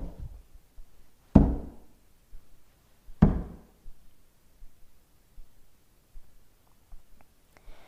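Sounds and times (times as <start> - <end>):
fist banging on the wooden door of a temple: 1.3 - 1.8, 3.2 - 3.7.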